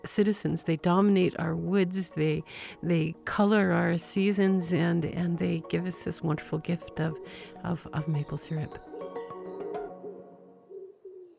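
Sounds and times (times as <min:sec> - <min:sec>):
speech: 0:00.2 - 0:08.9
wood pigeon cooing: 0:08.2 - 0:11.3.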